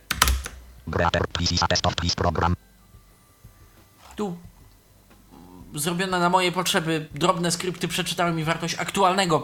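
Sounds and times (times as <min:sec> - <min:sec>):
computer keyboard clicks as a key combination is pressed: 0:00.1 - 0:00.6
speech: 0:00.9 - 0:02.7, 0:04.2 - 0:04.5, 0:05.7 - 0:09.4.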